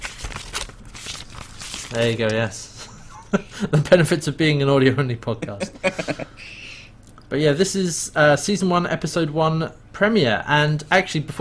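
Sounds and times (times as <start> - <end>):
small pieces of paper with notes being rifled through: 0.0 - 2.6
speech: 1.9 - 2.7, 3.3 - 6.6, 7.3 - 11.3
laughter: 2.8 - 3.9, 5.4 - 6.7.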